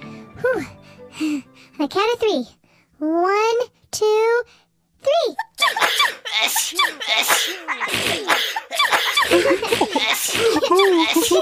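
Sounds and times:
speech: 0.4 - 11.4
giggly vocal noises: 5.4 - 11.4
person acting out a cartoonish elephant character's sneeze: 5.4 - 11.4.

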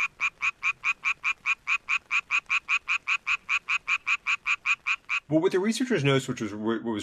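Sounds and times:
male Japanese tree frog mating call: 0.0 - 5.4
speech: 5.3 - 7.0.

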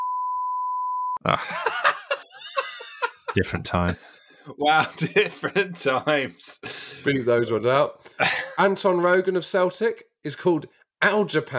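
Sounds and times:
loud steady censor beep: 0.0 - 1.2
speech: 1.2 - 2.0, 3.4 - 11.5
laughter: 1.2 - 6.4, 8.2 - 8.6.

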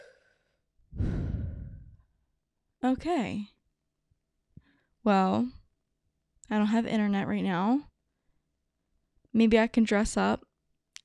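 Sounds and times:
person breathing in deeply: 0.0 - 2.1
person sighing exhale: 1.0 - 2.0
speech: 2.8 - 3.5, 5.0 - 5.6, 6.5 - 7.9, 9.3 - 10.5.

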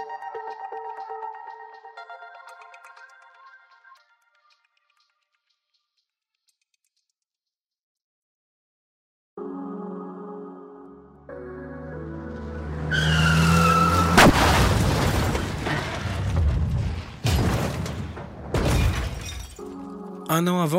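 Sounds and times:
car engine revving and accelerating: 12.0 - 14.8
tires screeching in a long skid: 12.1 - 17.2
loud car crash: 12.2 - 19.8
heavy impacts and crunching debris: 13.4 - 19.9
shattering glass: 13.4 - 19.9
speech: 20.4 - 20.7.

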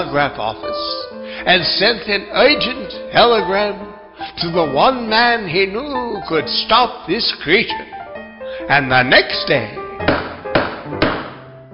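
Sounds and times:
speech: 0.0 - 8.0, 8.7 - 10.2
firm knocks on a front door: 10.0 - 11.4.

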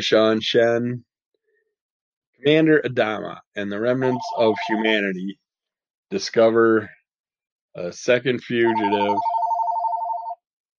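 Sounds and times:
speech: 0.0 - 1.1, 2.4 - 5.4, 6.1 - 7.0, 7.8 - 9.3
telephone ringing with a rapid warbling electronic trill: 4.0 - 5.0, 8.6 - 10.4.

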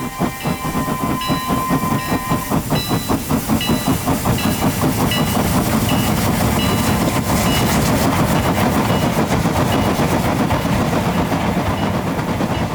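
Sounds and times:
faint steam train whistle: 0.0 - 3.2
steam train chuffing out of a station: 0.0 - 12.7.

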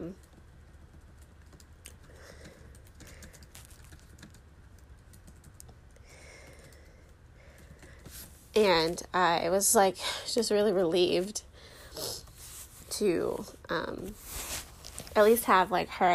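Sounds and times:
typing an email on a computer keyboard: 0.0 - 8.2
speech: 8.6 - 12.1, 13.0 - 14.3, 15.2 - 16.1.

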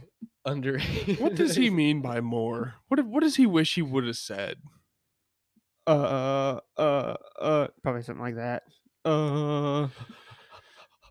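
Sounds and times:
speech: 0.4 - 4.8, 5.9 - 10.2
laughter: 0.8 - 1.8
person mimicking exaggerated heavy breathing: 9.1 - 11.0.

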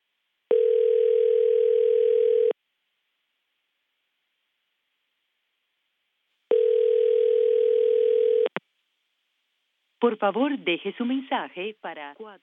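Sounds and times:
outgoing call ringback tone with long electronic rings: 0.5 - 2.6, 6.5 - 8.5
speech: 10.0 - 12.4.

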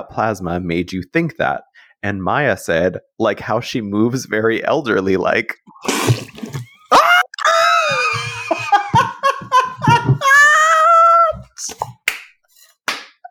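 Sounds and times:
speech: 0.0 - 6.3
person spitting out a mouthful of water: 5.7 - 8.2
shrieking high-pitched laughter: 6.9 - 11.3.

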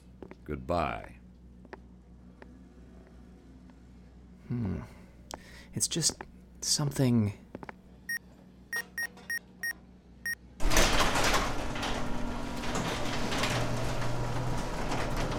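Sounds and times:
speech: 0.2 - 1.2, 4.5 - 5.0, 5.8 - 7.4
quick electronic beeps: 8.7 - 9.4
loud sliding door rushing open: 10.6 - 15.3.

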